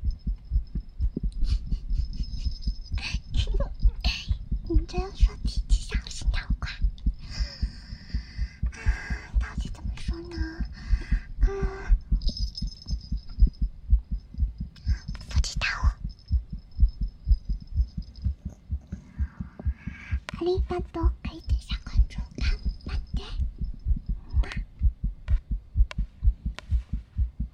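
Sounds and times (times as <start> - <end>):
fast steady heartbeat thumping, muffled: 0.0 - 27.5
whisper-like noises: 3.0 - 6.9, 9.2 - 10.8, 14.8 - 16.1, 18.1 - 23.4.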